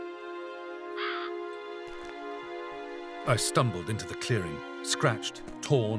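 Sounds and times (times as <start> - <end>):
crows cawing: 0.9 - 3.3
speech: 3.2 - 5.9.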